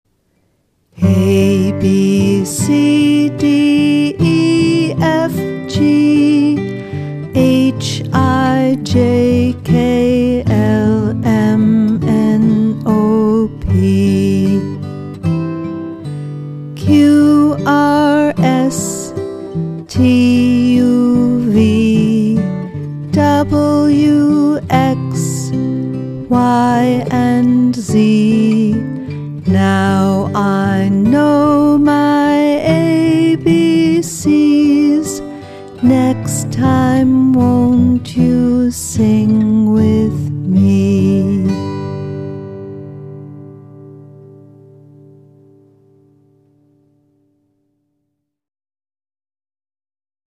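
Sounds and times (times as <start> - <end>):
children's song: 1.0 - 14.7, 16.8 - 19.2, 19.8 - 25.6, 26.2 - 41.7.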